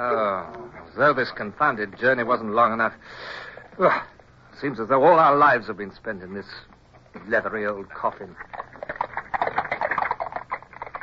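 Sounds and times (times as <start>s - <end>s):
speech: 0.0s - 8.6s
hooves of horses pulling a carriage on a hard road: 8.3s - 11.0s.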